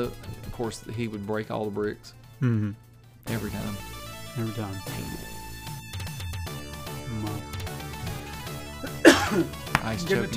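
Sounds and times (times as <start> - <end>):
speech: 0.0 - 5.4, 9.3 - 10.3
steady music: 0.0 - 10.3
raspy throat clearing after choking on ice: 2.4 - 2.8, 8.8 - 9.6
person coughing after choking on ice: 8.8 - 9.6.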